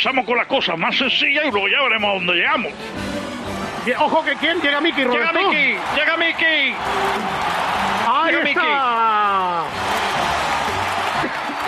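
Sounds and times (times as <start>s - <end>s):
speech: 0.0s - 7.7s
large crowd cheering and whooping in an ovation: 3.9s - 11.6s.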